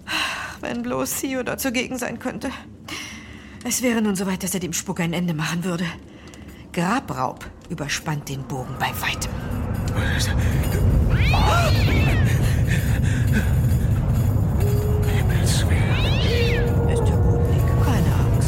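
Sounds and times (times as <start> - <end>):
speech: 0.6 - 3.0, 3.6 - 6.1, 6.8 - 9.4, 10.0 - 13.6
deep continuous earthquake rumble: 0.7 - 18.4
cat meowing in drawn-out rising-and-falling cries: 11.1 - 12.4, 15.8 - 16.9.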